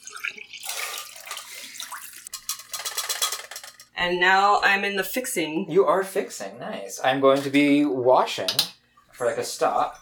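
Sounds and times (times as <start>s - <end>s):
used film developer liquid being poured out: 0.0s - 2.8s
speech: 4.0s - 10.0s.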